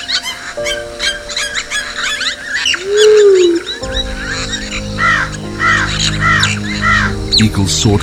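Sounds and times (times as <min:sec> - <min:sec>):
bird chorus of crow-like caws and chirps: 0:00.0 - 0:08.0
low sustained tone: 0:02.5 - 0:07.9
speech: 0:07.4 - 0:08.0.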